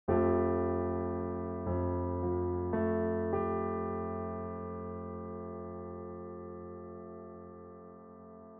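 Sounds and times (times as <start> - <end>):
13 EDO microtonal chord: 0.1 - 8.5.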